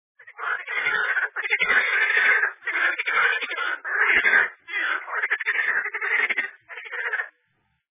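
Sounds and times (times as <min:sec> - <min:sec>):
toad croaking: 0:00.2 - 0:07.4.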